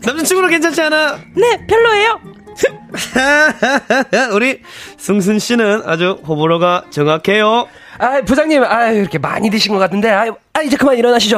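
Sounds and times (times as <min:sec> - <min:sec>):
speech: 0:00.0 - 0:11.3
person hiccuping: 0:02.5 - 0:03.0
laughter: 0:02.6 - 0:04.6.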